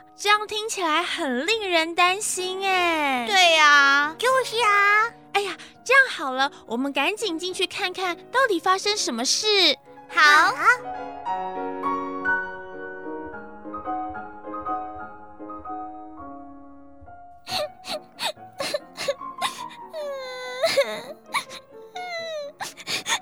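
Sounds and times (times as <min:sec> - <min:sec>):
speech: 0:00.2 - 0:11.7
girl crying: 0:17.5 - 0:23.2.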